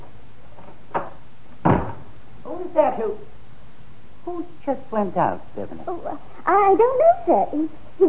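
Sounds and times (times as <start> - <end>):
office fire exit door onto emergency stairs banging: 0.9 - 2.2
speech: 2.8 - 3.4, 4.2 - 8.0.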